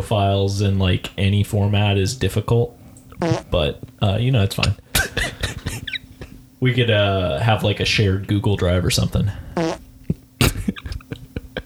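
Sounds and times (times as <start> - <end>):
speech: 0.0 - 4.8, 6.6 - 9.8
fart: 3.2 - 3.7, 9.6 - 11.0.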